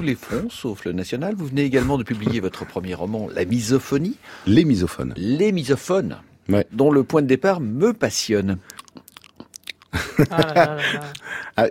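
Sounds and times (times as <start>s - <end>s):
speech: 0.0s - 8.8s, 10.2s - 11.6s
loud crunchy chewing: 8.6s - 10.0s
laughter: 9.9s - 11.3s.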